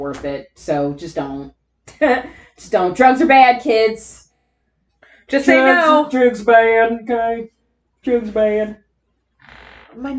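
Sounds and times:
speech: 0:00.0 - 0:04.2, 0:05.3 - 0:08.8, 0:10.0 - 0:10.1
laughter: 0:05.3 - 0:07.4
chair giving a loud raspy creak: 0:09.4 - 0:10.1.

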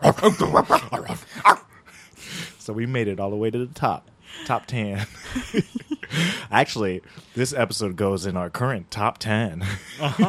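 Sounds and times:
laughter: 0:00.0 - 0:01.4, 0:04.4 - 0:06.4, 0:09.6 - 0:10.2
person imitating a dog barking: 0:00.0 - 0:01.6
speech: 0:00.1 - 0:01.6, 0:02.7 - 0:10.2.

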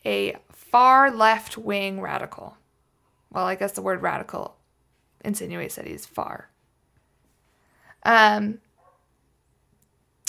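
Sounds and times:
speech: 0:00.0 - 0:02.6, 0:03.3 - 0:04.6, 0:05.2 - 0:06.5, 0:08.0 - 0:08.6
dog barking: 0:08.8 - 0:09.2.

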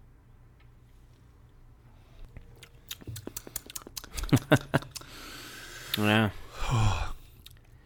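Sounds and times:
wet lip smacks: 0:02.4 - 0:05.2
tongue clicks: 0:02.6 - 0:05.2
soft slurping of cask-strength whiskey: 0:02.6 - 0:06.1
laughter: 0:04.1 - 0:05.0
speech: 0:04.3 - 0:04.8, 0:06.0 - 0:07.0.

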